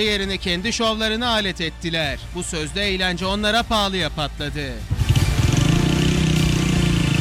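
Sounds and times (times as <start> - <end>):
speech: 0.0 - 4.9
motorcycle engines revving in a children's playground: 4.9 - 7.1.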